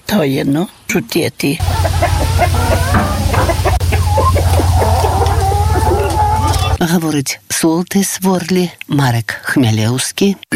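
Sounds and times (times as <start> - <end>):
speech: 0.1 - 1.7, 6.8 - 10.5
crowd of chickens clucking and squawking: 1.6 - 6.8
steady low hum: 1.6 - 6.8.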